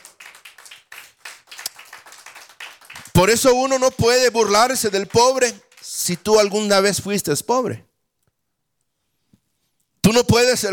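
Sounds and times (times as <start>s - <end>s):
audience clapping: 0.0s - 7.3s
speech: 3.2s - 7.9s, 10.2s - 10.7s.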